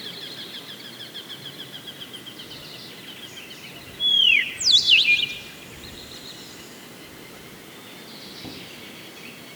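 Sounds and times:
black-crested warbler Myiothlypis nigrocristata whistle and zigzag notes: 4.0 - 5.4.

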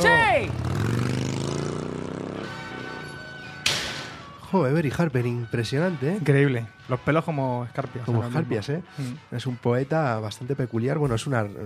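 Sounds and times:
motorcycle with sidecar engine rumbling: 0.0 - 4.4
speech: 4.5 - 11.6.

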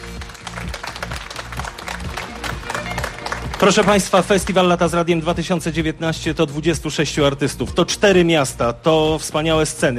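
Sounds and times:
audience applause at a summer radio music festival in Zakopane: 0.0 - 4.5
speech: 3.6 - 9.9.

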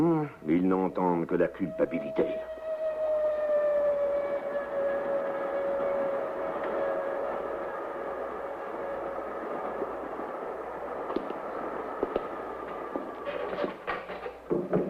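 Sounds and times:
speech: 0.0 - 2.6
train passing at night with a broad rumble and roar: 1.1 - 14.8
long sustained whistle-like tone of a passing train: 1.6 - 4.9.

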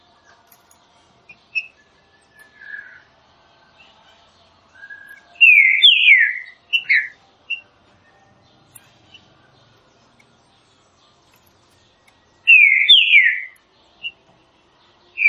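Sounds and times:
green-winged saltator song in classic training style: 1.3 - 3.1, 4.7 - 9.4, 12.0 - 14.2.

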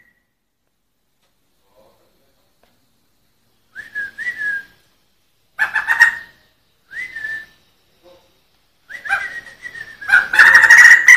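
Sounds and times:
Sumatran laughingthrush whistled song with chattering bursts: 0.0 - 0.4, 3.7 - 4.8, 5.6 - 7.7, 8.8 - 11.1.

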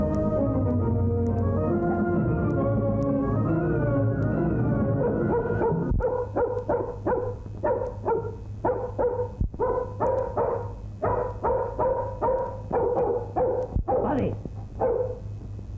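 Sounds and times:
low hum: 0.0 - 15.7
dog barking in a film scene: 4.9 - 15.3.

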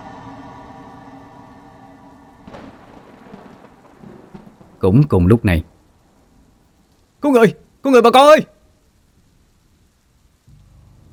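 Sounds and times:
heavy rain pouring at night over a poor village: 0.0 - 11.1
speech: 4.8 - 5.7, 7.3 - 8.6.

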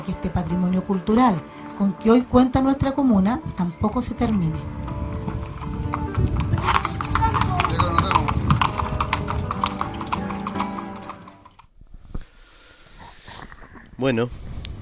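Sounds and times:
speech: 0.0 - 4.9, 14.0 - 14.5
hooves of a horse newly fitted with horseshoes galloping: 0.0 - 11.7.

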